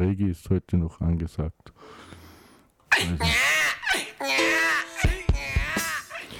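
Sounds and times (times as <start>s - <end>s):
speech: 0.0s - 2.2s, 3.0s - 3.5s
baby squealing and crying: 2.9s - 6.3s.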